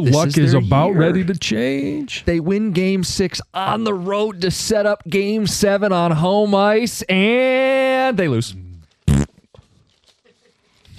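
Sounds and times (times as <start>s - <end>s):
speech: 0.0s - 8.6s
faint rustles: 8.8s - 10.9s
fart noise: 9.0s - 9.5s.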